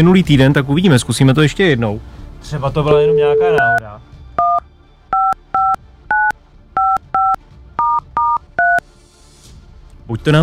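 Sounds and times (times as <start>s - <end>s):
speech: 0.0s - 4.7s, 10.1s - 10.4s
touch-tone telephone dialing beeps placing an outgoing call: 3.0s - 3.8s, 4.4s - 8.8s.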